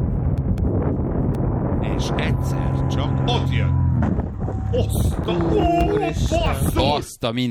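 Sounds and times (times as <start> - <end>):
wind buffeting the microphone during paraglider flight: 0.0 - 7.2
speech: 2.0 - 7.4.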